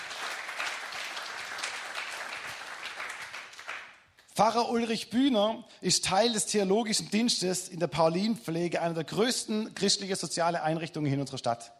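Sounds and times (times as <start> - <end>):
crowd applauding: 0.0 - 4.0
speech: 4.4 - 11.7.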